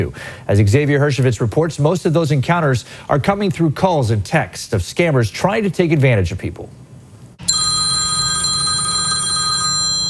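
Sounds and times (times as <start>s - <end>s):
speech: 0.0s - 6.8s
telephone bell ringing: 7.4s - 10.0s.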